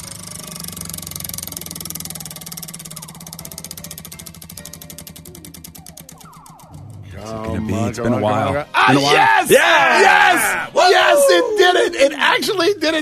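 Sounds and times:
prize wheel spinning and ticking: 0.0s - 8.4s
low droning background: 1.2s - 8.8s
speech: 7.2s - 13.0s.

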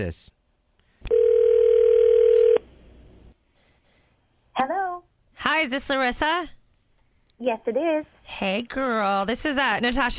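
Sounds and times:
speech: 0.0s - 0.4s, 5.4s - 6.6s, 7.4s - 10.1s
telephone dial tone while connecting call: 1.1s - 2.6s.

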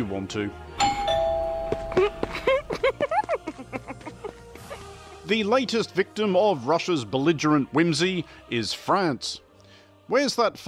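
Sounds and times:
speech: 0.0s - 1.0s, 5.3s - 9.4s, 10.1s - 10.6s
doorbell ringing: 0.8s - 2.6s
laughter: 2.0s - 5.0s.

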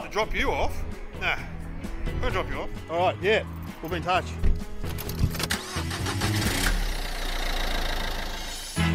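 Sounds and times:
speech: 0.2s - 1.5s, 2.2s - 4.7s
car engine cranking and idling: 5.2s - 8.8s.

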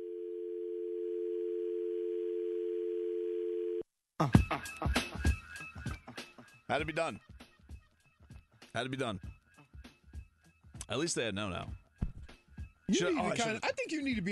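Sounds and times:
telephone line tone of an unanswered call: 0.0s - 3.8s
speech: 4.2s - 5.4s, 6.7s - 7.3s, 8.7s - 9.3s, 10.9s - 11.8s, 12.9s - 14.2s.

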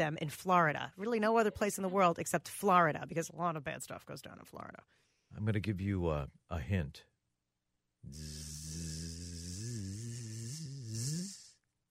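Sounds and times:
speech: 0.0s - 7.1s, 8.0s - 9.0s
voice imitating a buzzing bee: 8.0s - 11.6s.

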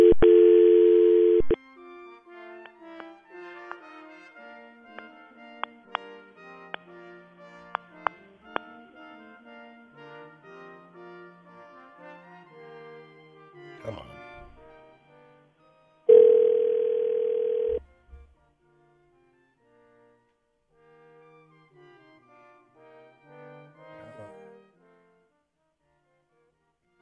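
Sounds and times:
loud telephone dial tone after failed call: 0.0s - 1.6s, 16.1s - 17.8s.

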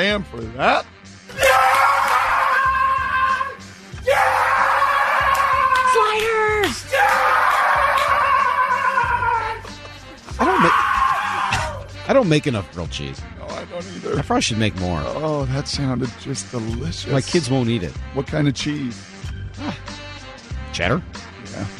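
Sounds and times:
speech: 0.0s - 1.4s, 12.1s - 19.8s, 20.8s - 21.7s
man yelling excitedly: 1.3s - 9.6s, 10.4s - 11.8s.

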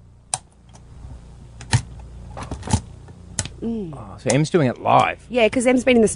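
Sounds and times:
ring binder rings being clicked shut: 1.6s - 2.8s
speech: 3.6s - 6.1s.

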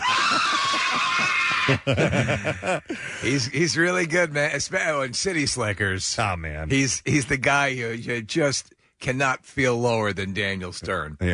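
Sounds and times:
man giving a film scream: 0.0s - 1.9s
man laughing: 0.0s - 3.6s
speech: 1.7s - 11.3s.

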